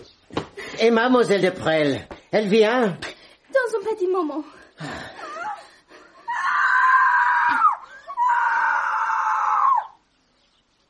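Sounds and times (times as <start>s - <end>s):
speech: 0.8s - 3.1s, 3.7s - 5.1s
woman screaming: 6.2s - 10.0s.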